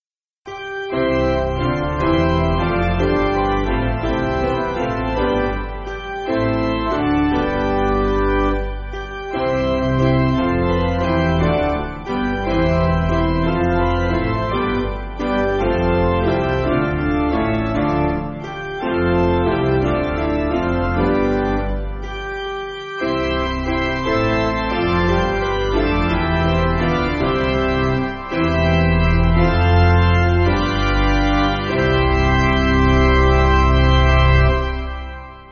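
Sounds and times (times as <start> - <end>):
piano hymn: 0.5 - 35.5.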